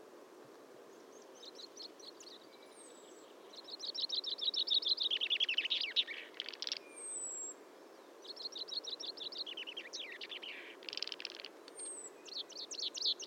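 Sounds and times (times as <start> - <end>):
common chaffinch Fringilla coelebs singing: 3.5 - 7.3, 8.2 - 13.2.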